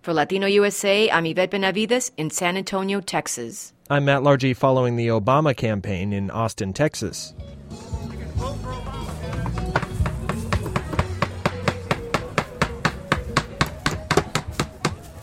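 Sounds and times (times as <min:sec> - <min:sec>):
speech: 0:00.0 - 0:08.8
hammer blows on wood hammering signs onto a house: 0:09.0 - 0:15.0.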